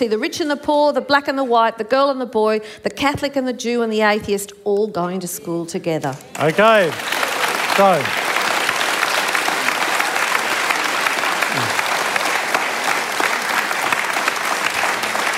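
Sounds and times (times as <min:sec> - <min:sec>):
speech: 0:00.0 - 0:07.2, 0:07.8 - 0:08.2
audience clapping after a speech: 0:06.2 - 0:15.3.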